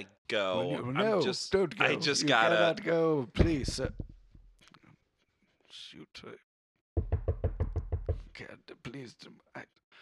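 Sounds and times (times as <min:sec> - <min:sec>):
speech: 0:00.0 - 0:04.1, 0:05.8 - 0:06.4, 0:08.4 - 0:09.8
loud knocking on a door: 0:03.4 - 0:04.2, 0:07.0 - 0:08.4.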